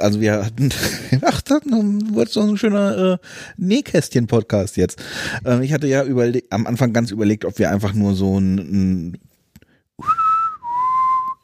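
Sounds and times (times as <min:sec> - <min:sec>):
speech: 0:00.0 - 0:09.3, 0:10.0 - 0:10.2
person whistling imitating a boatswain's pipe call: 0:10.0 - 0:11.4.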